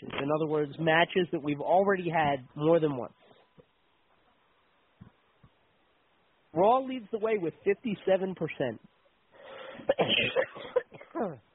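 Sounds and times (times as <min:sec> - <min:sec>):
speech: 0:00.2 - 0:03.2, 0:06.6 - 0:08.9, 0:09.8 - 0:11.5
man coughing and clearing his throat: 0:09.7 - 0:11.3.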